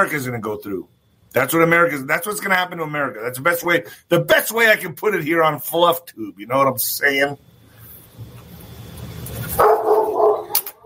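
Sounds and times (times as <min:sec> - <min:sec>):
speech: 0:00.0 - 0:07.5
dog barking: 0:09.6 - 0:10.8.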